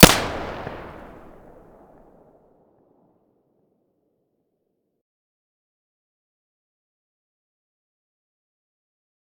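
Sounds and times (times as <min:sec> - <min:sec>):
PM weapon muzzle blast: 0:00.0 - 0:01.3.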